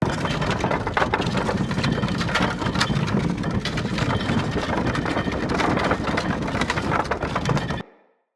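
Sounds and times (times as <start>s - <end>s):
drawbridge: 0.0s - 7.8s.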